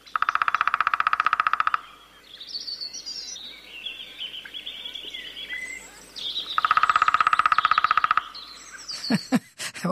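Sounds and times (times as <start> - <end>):
songbirds chirping: 0.0 - 9.9
lesser spotted woodpecker drumming: 0.1 - 2.0, 6.4 - 9.3.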